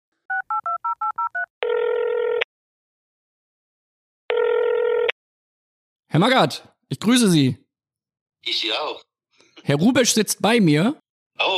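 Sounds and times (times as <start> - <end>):
touch-tone telephone dialing beeps: 0.3 - 2.4
speech: 6.1 - 7.6, 8.4 - 11.5.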